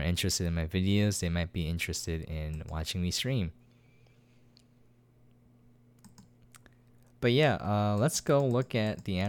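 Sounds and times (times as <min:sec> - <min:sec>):
steady low electrical hum: 0:00.0 - 0:09.2
speech: 0:00.1 - 0:03.6, 0:07.2 - 0:09.2
faint computer mouse clicks: 0:06.0 - 0:07.1, 0:07.9 - 0:09.2.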